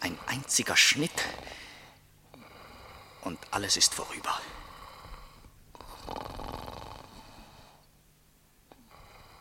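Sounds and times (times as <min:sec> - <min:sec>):
speech: 0:00.1 - 0:01.6, 0:03.2 - 0:04.6
man snoring in deep sleep: 0:01.1 - 0:01.6, 0:02.3 - 0:03.5, 0:04.3 - 0:07.8, 0:08.8 - 0:09.3
breathing: 0:01.2 - 0:03.3, 0:04.5 - 0:06.0, 0:07.1 - 0:07.9.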